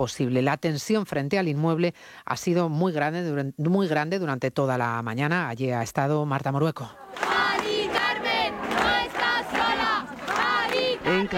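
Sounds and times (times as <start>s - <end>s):
speech: 0.0s - 7.0s, 11.1s - 11.3s
hundreds of people shouting in the street: 6.9s - 11.3s.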